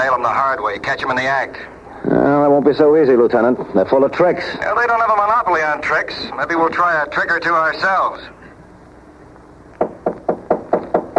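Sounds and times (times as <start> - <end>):
speech: 0.2 - 8.4
knocking on a door: 9.8 - 11.1.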